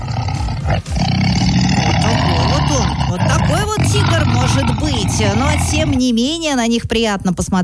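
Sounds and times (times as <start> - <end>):
Amur tiger roaring at a zoo: 0.0 - 6.0
speech: 4.4 - 7.6.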